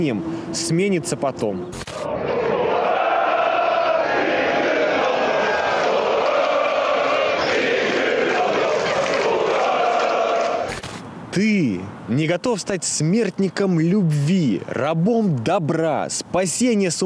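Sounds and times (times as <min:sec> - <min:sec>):
speech: 0:00.0 - 0:02.4, 0:11.4 - 0:17.0
dense crowd of sports fans roaring and shouting: 0:02.0 - 0:10.7.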